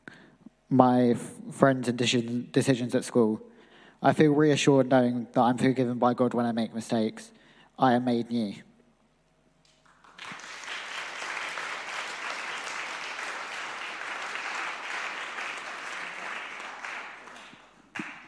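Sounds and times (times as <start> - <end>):
speech: 0.7 - 8.7
audience applause from many hands: 9.8 - 18.2.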